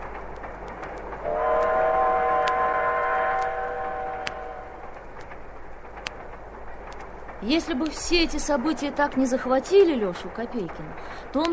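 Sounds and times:
sharp clicks from the rails: 0.0 - 11.5
train rumbling along the tracks: 0.0 - 11.5
long loud multi-tone train whistle: 1.2 - 4.8
speech: 7.4 - 11.5.

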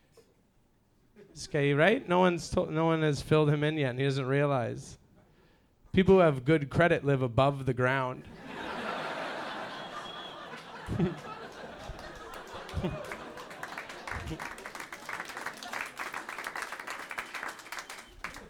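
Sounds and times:
speech: 1.2 - 5.0, 6.0 - 8.7, 10.9 - 11.3, 14.3 - 14.5
audience murmuring and chuckling: 8.3 - 18.4.

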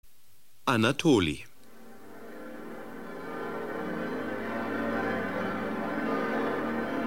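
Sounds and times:
speech: 0.7 - 1.5
many church bells ringing together: 2.0 - 7.0.

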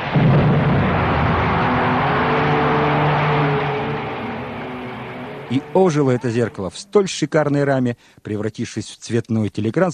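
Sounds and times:
pyrotechnic burst of sparks on a concert stage: 0.0 - 6.4
low hum: 0.0 - 7.0
speech: 5.5 - 9.9.

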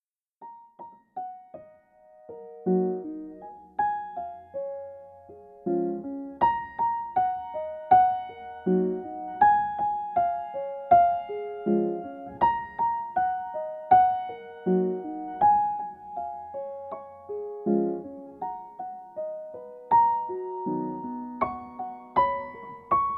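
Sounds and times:
chillout piano: 0.4 - 23.1.

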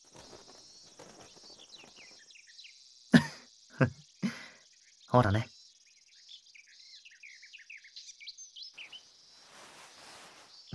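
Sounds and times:
small birds chirping and twittering at a feeding spot: 0.0 - 10.7
speech: 3.8 - 4.0, 5.2 - 5.5
steady hiss of broadband noise: 8.8 - 10.7.

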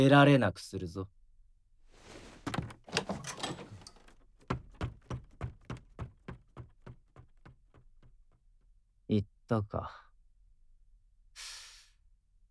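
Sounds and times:
speech: 0.0 - 1.2, 9.1 - 10.0
door being opened with a rough scraping rattle: 2.0 - 8.0
run of evenly spaced knocks or clunks: 2.1 - 8.1.

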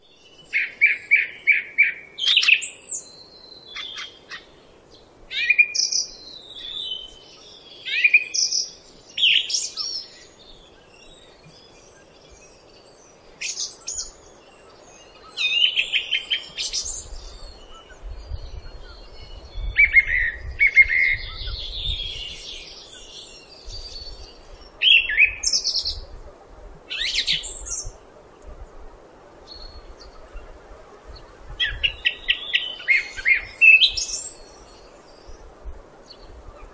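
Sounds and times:
song thrush singing: 0.0 - 36.7.

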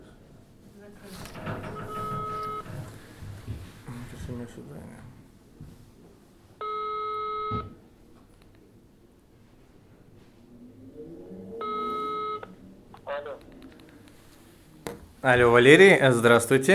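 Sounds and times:
quiet noise: 0.0 - 16.7
telephone call ringing out with steady tonal rings: 1.6 - 2.9, 6.6 - 7.8, 11.6 - 13.4
speech: 4.4 - 5.1, 15.2 - 16.7.

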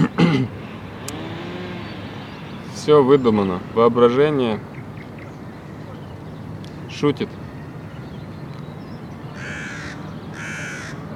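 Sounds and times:
speech: 2.9 - 4.7, 7.0 - 7.4
crow cawing: 9.4 - 11.1.

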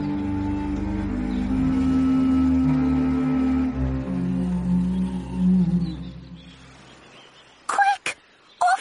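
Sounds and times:
beached whale moaning call in a bay: 0.1 - 6.3.

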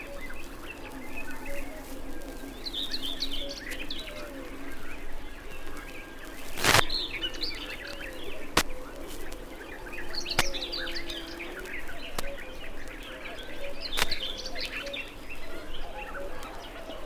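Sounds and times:
common whitethroat twittering: 0.0 - 16.7
sharp clicks: 6.6 - 7.1, 10.3 - 11.2, 13.9 - 14.8.

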